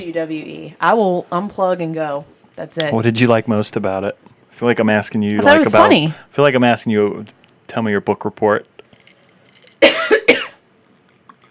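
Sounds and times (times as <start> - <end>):
speech: 0.0 - 8.7
harsh throaty coughs: 9.8 - 10.6.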